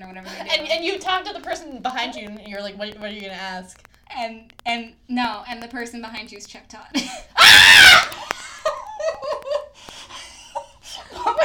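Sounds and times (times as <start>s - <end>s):
speech: 0.1s - 7.8s
loud shrill scream of delight: 7.4s - 8.2s
excited breathy giggling and laughter: 8.2s - 11.4s.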